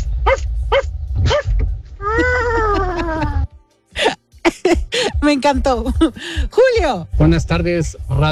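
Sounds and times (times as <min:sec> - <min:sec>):
low rumble: 0:00.0 - 0:08.3
person imitating dog barking and howling: 0:00.3 - 0:03.4
laughter: 0:02.0 - 0:05.2
speech: 0:05.3 - 0:08.3.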